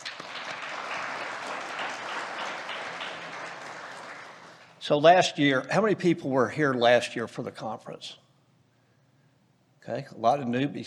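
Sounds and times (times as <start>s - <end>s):
room full of people clapping: 0.0s - 4.8s
speech: 4.8s - 8.2s, 9.8s - 10.8s.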